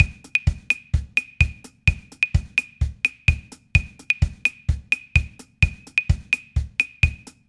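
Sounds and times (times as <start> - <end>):
son clave rhythm: 0.0 - 7.4.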